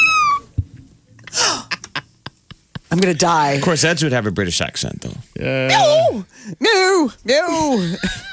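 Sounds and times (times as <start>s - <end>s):
kittens mewing played from a video: 0.0s - 0.5s
speech: 2.9s - 8.2s.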